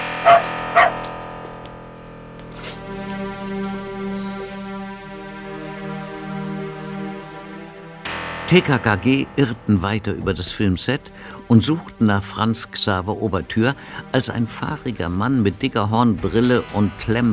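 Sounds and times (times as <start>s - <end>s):
dog barking: 0.0s - 1.2s
steady sustained musical drone: 0.0s - 17.3s
speech: 8.5s - 17.3s.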